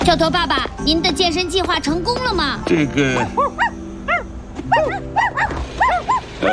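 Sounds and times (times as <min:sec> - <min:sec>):
speech: 0:00.1 - 0:03.6
two puppies barking: 0:03.1 - 0:06.5.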